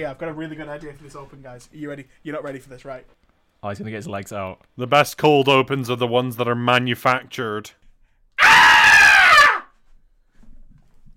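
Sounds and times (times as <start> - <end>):
speech: 0.0 - 7.8
loud sustained human scream: 8.4 - 9.7.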